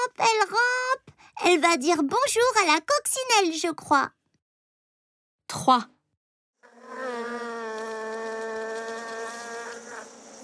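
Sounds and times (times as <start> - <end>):
speech: 1.5 - 4.2, 5.5 - 5.9
bees buzzing among flowers: 6.7 - 10.4.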